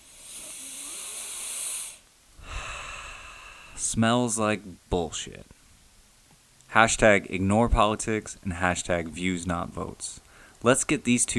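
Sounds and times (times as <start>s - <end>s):
deep breath in: 0.0s - 3.8s, 10.3s - 10.6s
speech: 3.8s - 5.6s, 6.8s - 11.3s.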